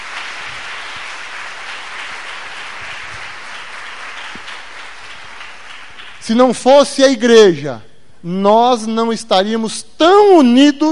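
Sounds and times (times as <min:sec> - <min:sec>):
crowd applauding in a church: 0:00.0 - 0:06.5
speech: 0:06.3 - 0:10.9.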